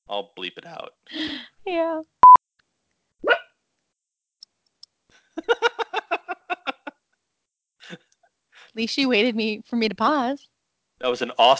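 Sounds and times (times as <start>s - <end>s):
laughter: 0.1s - 1.4s, 5.4s - 6.9s
speech: 0.1s - 2.2s, 8.8s - 11.5s
dog barking: 3.2s - 3.5s.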